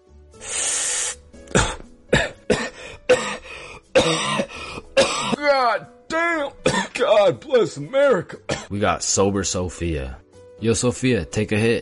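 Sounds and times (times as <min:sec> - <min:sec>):
long raspy breath: 0:00.4 - 0:01.2, 0:02.7 - 0:04.9
harsh coughs and throat-clearing in a coughing fit: 0:01.5 - 0:05.4, 0:06.6 - 0:07.1, 0:08.3 - 0:08.7
speech: 0:07.6 - 0:11.8.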